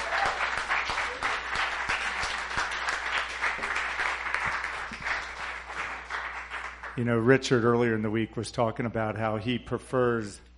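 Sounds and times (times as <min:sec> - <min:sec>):
audience cheering to praise the Lord: 0:00.0 - 0:01.8
audience applauding to praise the Lord: 0:00.0 - 0:07.1
speech: 0:07.0 - 0:10.5.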